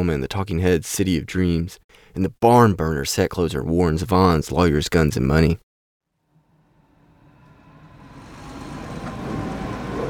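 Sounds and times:
speech: 0.0 - 5.6
truck engine and tire rumble driving along a road: 6.5 - 10.0.

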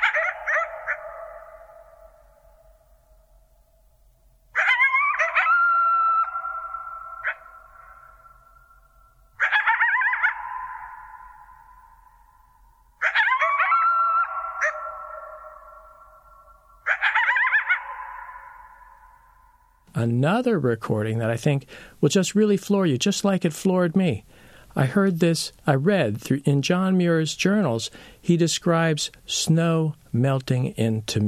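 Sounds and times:
coyotes howling and yipping: 0.0 - 2.8, 4.5 - 19.8
speech: 20.0 - 31.2.

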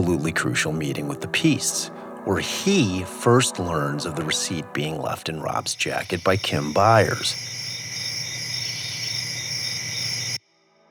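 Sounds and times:
speech: 0.0 - 7.6
chorus of crickets chirping: 4.3 - 10.4.

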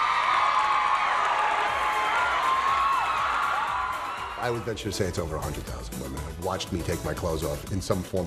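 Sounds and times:
large crowd of women screaming and cheering: 0.0 - 4.7
speech: 4.4 - 8.2.

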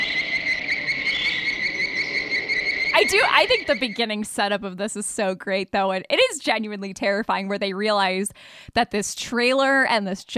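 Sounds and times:
shrill cicada-like high chirping trill: 0.0 - 4.2
speech: 3.0 - 10.3.

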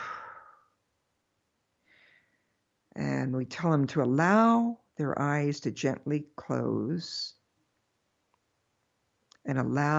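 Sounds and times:
slow breathing in through the nose and out through the mouth: 0.0 - 0.8, 1.8 - 2.6
speech: 3.0 - 7.4, 9.5 - 9.9.

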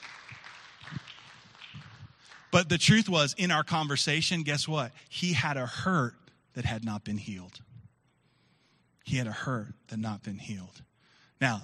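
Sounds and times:
church audience applause: 0.0 - 2.5
speech: 2.5 - 7.7, 9.1 - 11.6.

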